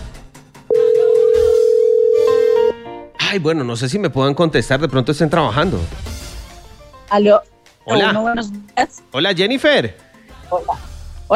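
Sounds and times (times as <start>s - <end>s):
telephone dial tone while placing a call: 0.7s - 2.7s
speech: 3.3s - 6.1s, 7.1s - 11.3s.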